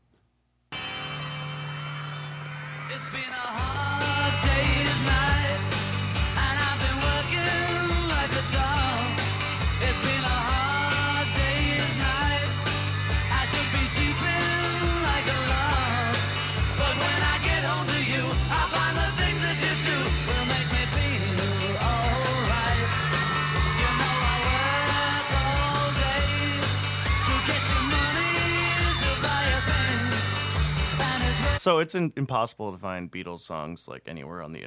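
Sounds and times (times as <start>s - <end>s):
loud upbeat rock song: 0.8s - 31.6s
speech: 2.9s - 3.9s, 31.6s - 34.6s
crowd of fans screaming and shrieking: 22.0s - 31.4s.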